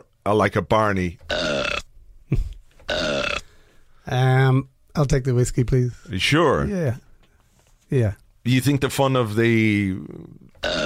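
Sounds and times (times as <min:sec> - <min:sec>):
speech: 0:00.2 - 0:01.5, 0:04.1 - 0:07.1, 0:07.9 - 0:10.8
loud burps and drawn-out belch: 0:01.3 - 0:01.9, 0:02.9 - 0:03.6, 0:10.4 - 0:10.8.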